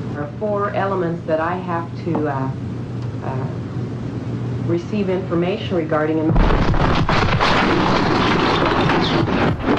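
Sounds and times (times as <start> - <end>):
speech: 0.2 - 2.7, 3.2 - 3.7, 4.7 - 7.0
massive explosion in a water resources boardroom: 6.3 - 9.7.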